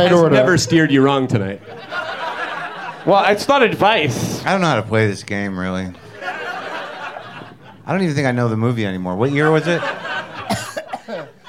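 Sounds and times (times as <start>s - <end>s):
speech: 0.0s - 2.1s, 3.0s - 6.0s, 7.9s - 10.0s
laughter: 0.1s - 5.0s, 5.9s - 11.4s
person coughing harshly: 10.5s - 11.4s.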